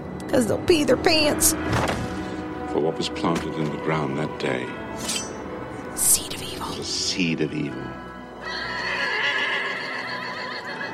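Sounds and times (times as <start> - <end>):
speech: 0.3 - 2.0, 2.8 - 5.3, 6.8 - 8.0
horse whinnying with a sustained wavering neigh: 8.4 - 10.9.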